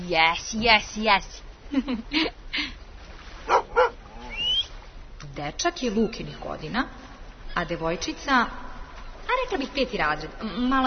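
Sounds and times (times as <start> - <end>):
speech: 0.1 - 2.8, 3.4 - 4.0, 5.4 - 8.6, 9.3 - 10.8
dog barking in short sharp yips: 3.5 - 4.0
dog whining: 3.5 - 4.7.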